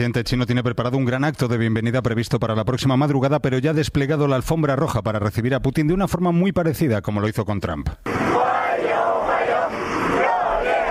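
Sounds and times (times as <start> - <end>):
speech: 0.0 - 8.5
dozens of children cheering at an airport welcome: 8.1 - 10.8.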